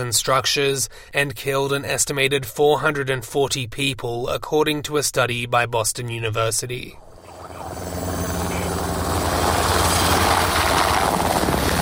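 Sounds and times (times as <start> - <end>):
speech: 0.0 - 7.0
helicopter passing overhead with thudding rotor blades and engine roar: 7.0 - 11.7.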